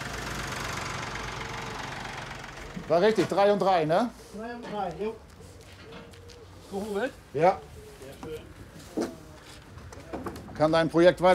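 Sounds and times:
tractor engine running: 0:00.0 - 0:03.9
speech: 0:02.9 - 0:05.3, 0:06.7 - 0:09.1, 0:10.6 - 0:11.3.

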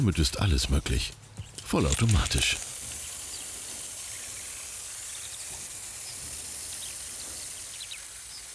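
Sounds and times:
speech: 0:00.0 - 0:02.7
faint birds chirping: 0:00.0 - 0:08.5
water spraying from automatic irrigation system in garden bed: 0:01.5 - 0:08.5.

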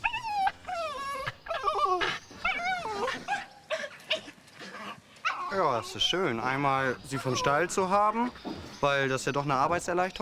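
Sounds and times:
excited farm dog whimpering and yipping: 0:00.0 - 0:06.0, 0:07.1 - 0:08.2
speech: 0:05.6 - 0:10.2.

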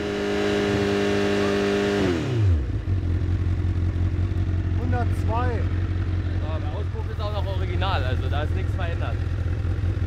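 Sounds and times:
car engine revving to high steady revs: 0:00.0 - 0:10.0
car engine low loud idle rumble: 0:02.5 - 0:10.0
voices talking: 0:04.3 - 0:09.4.

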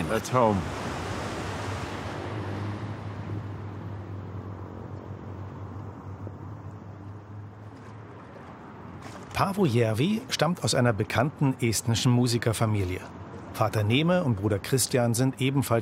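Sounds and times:
surf roaring on the beach at Pärnu: 0:00.0 - 0:05.4
speech: 0:00.1 - 0:00.8, 0:09.4 - 0:15.8.

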